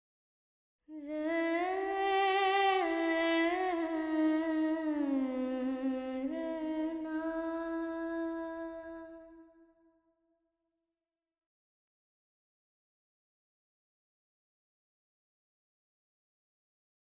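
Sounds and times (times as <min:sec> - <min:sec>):
female vocals with reverb in E minor: 0:00.9 - 0:09.5.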